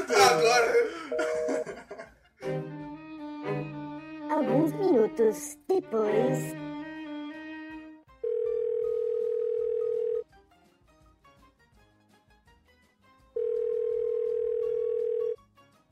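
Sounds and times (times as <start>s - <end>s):
laughter: 0.0s - 2.4s
speech: 5.1s - 6.7s
long steady telephone line tone after a call is hung up: 8.2s - 10.2s, 13.4s - 15.4s.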